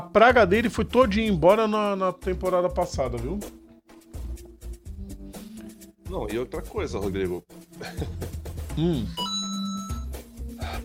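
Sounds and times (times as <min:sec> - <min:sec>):
speech: 0:00.1 - 0:03.6, 0:06.1 - 0:09.2
phone giving off a steady electronic beeping tone: 0:09.1 - 0:10.2.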